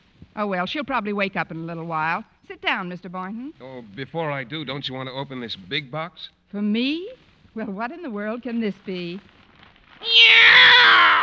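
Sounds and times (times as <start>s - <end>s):
speech: 0.4s - 9.3s
male cat meowing drawn-out: 10.0s - 11.2s.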